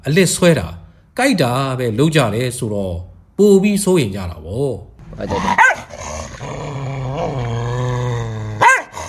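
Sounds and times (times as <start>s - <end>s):
speech: 0.0s - 5.8s
dog growling whine: 5.3s - 9.0s
dog barking: 5.6s - 5.9s, 8.6s - 9.0s.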